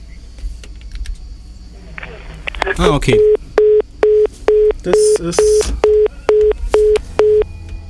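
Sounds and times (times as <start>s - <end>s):
speech: 2.8s - 3.4s, 4.8s - 6.0s
telephone line tone from a failed call: 3.1s - 7.5s.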